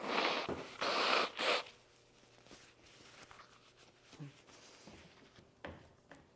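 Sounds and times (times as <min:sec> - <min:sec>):
nose being blown: 0:00.0 - 0:01.7.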